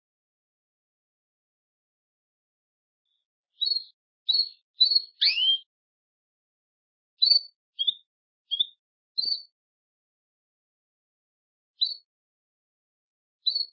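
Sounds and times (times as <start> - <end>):
Belgian canary singing: 3.1 - 5.7, 7.2 - 9.5, 11.8 - 12.1, 13.4 - 13.7.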